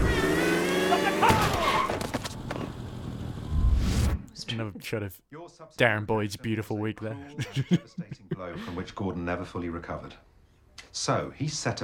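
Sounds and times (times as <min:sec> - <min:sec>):
car engine humming as the car reverses: 0:00.0 - 0:03.5
speech: 0:04.6 - 0:10.3, 0:10.9 - 0:11.8
laughter: 0:07.1 - 0:09.0.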